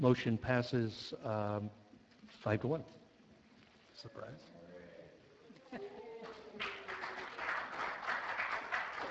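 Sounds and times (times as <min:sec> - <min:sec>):
speech: 0:00.0 - 0:03.0, 0:04.0 - 0:04.6, 0:05.7 - 0:06.7
audience applause at a meeting: 0:06.2 - 0:09.0.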